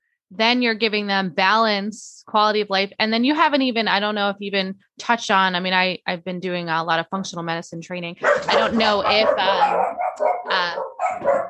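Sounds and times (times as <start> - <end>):
speech: 0.3 - 11.4
dog barking: 8.2 - 11.4.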